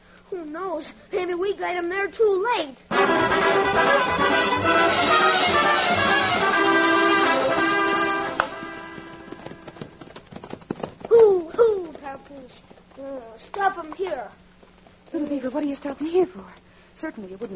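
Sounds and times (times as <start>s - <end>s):
speech: 0.3s - 6.1s, 12.4s - 14.4s, 15.1s - 17.5s
music: 2.9s - 10.0s
horses ridden at a steady pace clip-clopping: 3.4s - 17.5s.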